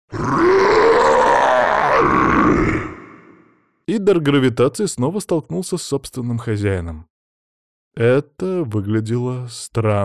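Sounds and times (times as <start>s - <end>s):
huge shark roaring while lunging out of the water: 0.1s - 3.6s
speech: 3.9s - 7.1s, 8.0s - 10.0s.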